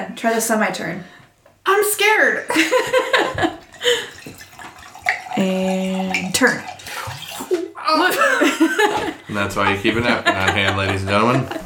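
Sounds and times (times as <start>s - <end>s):
speech: 0.0s - 4.2s, 5.4s - 6.7s, 7.9s - 11.6s
laughter: 2.5s - 4.1s, 8.0s - 11.6s
wine pouring from a bottle into a glass: 3.6s - 7.8s.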